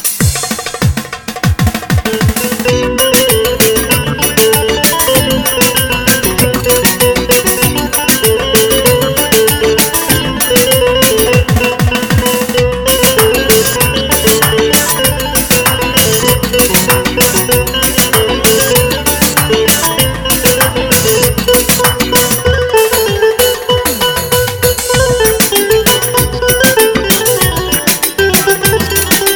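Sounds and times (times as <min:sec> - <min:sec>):
Roland GW-8 keyboard music: 0:00.2 - 0:29.3.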